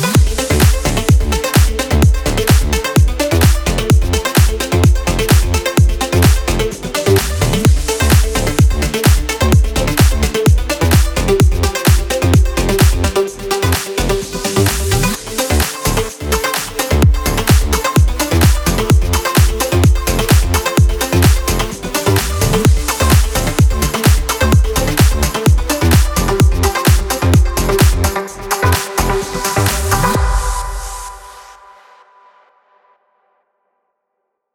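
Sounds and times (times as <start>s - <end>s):
plucked synth bed in A minor: 0.1s - 31.5s.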